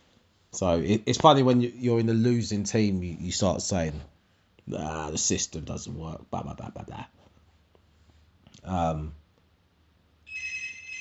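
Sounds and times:
speech: 0:00.6 - 0:04.1, 0:04.7 - 0:07.2, 0:08.6 - 0:09.2
steady electronic telephone ring: 0:10.3 - 0:10.9.

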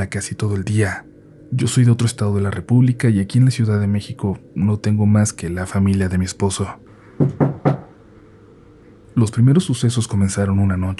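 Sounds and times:
speech: 0:00.0 - 0:07.4, 0:09.2 - 0:10.9
quick firm knocks on the front door of a house in Mexico City: 0:07.2 - 0:07.9.

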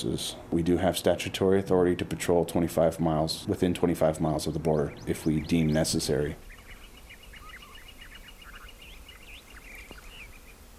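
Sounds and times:
speech: 0:00.0 - 0:06.5
steady hiss: 0:00.0 - 0:10.7
Gila woodpecker calls at sunrise at Organ Pipe National Monument: 0:03.7 - 0:10.7.

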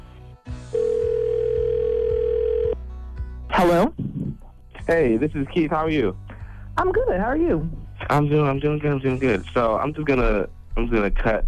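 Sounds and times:
telephone line tone: 0:00.7 - 0:02.8
speech: 0:03.6 - 0:04.1, 0:04.9 - 0:11.4.

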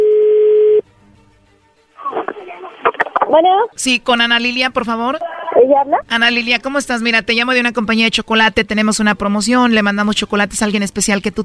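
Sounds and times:
telephone line tone as call connects: 0:00.0 - 0:00.8
speech: 0:03.3 - 0:11.4.

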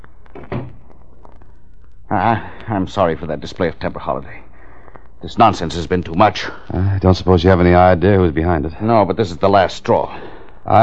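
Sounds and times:
door swinging shut: 0:00.4 - 0:00.8
speech: 0:02.1 - 0:04.5, 0:05.2 - 0:10.8.

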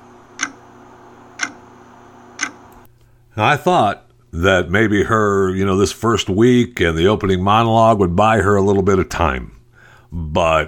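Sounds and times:
clock ticking: 0:01.4 - 0:01.6, 0:02.4 - 0:02.6
speech: 0:03.4 - 0:10.6.

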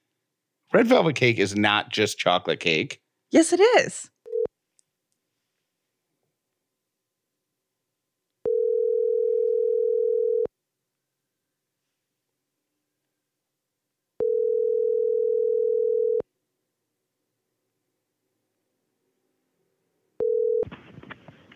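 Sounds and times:
speech: 0:00.7 - 0:04.1
phone ringback tone while a call is placed: 0:08.4 - 0:10.5, 0:14.2 - 0:16.2, 0:20.2 - 0:20.7.

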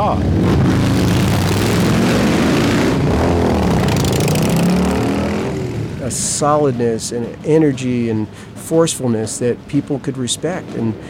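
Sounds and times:
speech: 0:00.1 - 0:00.8, 0:06.4 - 0:11.0
Harley-Davidson motorcycle engine roaring past: 0:00.4 - 0:06.1.

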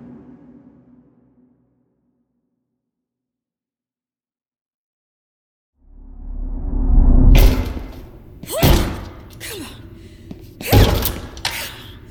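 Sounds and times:
heavy irregular thuds against a stuck classroom door: 0:07.4 - 0:09.4, 0:10.3 - 0:11.5
strained breaths and grunts: 0:08.4 - 0:12.0.

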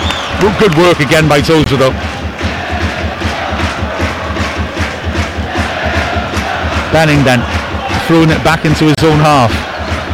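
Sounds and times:
rhythmic clapping of stadium crowd: 0:00.0 - 0:10.1
speech: 0:00.4 - 0:02.1, 0:06.9 - 0:09.7
large football stadium crowd chanting and roaring: 0:01.7 - 0:08.4, 0:09.1 - 0:10.1.

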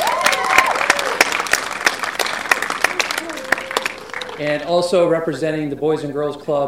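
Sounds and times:
crowd clapping at a championship final: 0:00.0 - 0:04.9
speech: 0:04.4 - 0:06.6.

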